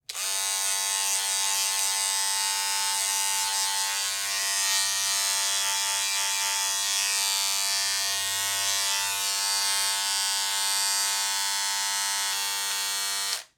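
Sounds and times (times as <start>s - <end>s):
electric razor running: 0.1s - 13.5s.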